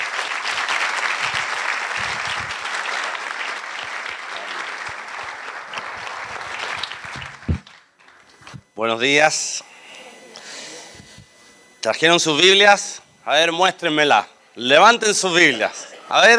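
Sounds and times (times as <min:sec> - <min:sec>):
audience applauding in welcome: 0:00.0 - 0:08.4
speech: 0:08.8 - 0:09.7, 0:11.9 - 0:16.3.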